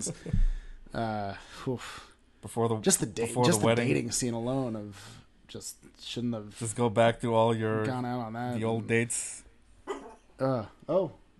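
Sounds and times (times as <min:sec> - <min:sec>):
speech: 0:00.0 - 0:09.4, 0:10.4 - 0:11.2
dog barking: 0:09.9 - 0:10.2.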